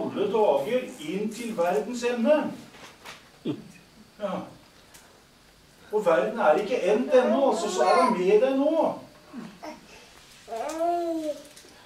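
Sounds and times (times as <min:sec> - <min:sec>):
speech: 0:00.2 - 0:04.6, 0:05.9 - 0:09.8
young children babbling: 0:07.1 - 0:08.3, 0:09.3 - 0:11.5.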